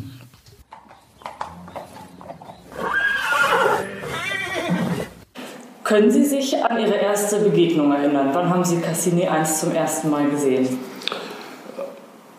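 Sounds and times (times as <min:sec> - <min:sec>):
hooves of a large grey Holsteiner show-jumping horse clopping: 0:00.3 - 0:03.9
large grey Holsteiner show-jumping horse whinnying: 0:01.4 - 0:05.2
speech: 0:05.9 - 0:10.9.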